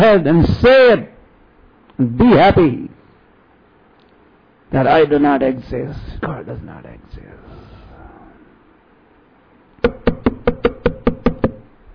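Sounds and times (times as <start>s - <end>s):
speech: 0.0s - 1.1s, 2.0s - 3.0s, 4.7s - 7.3s
loud sharp hollow knocks on a door: 9.8s - 11.7s.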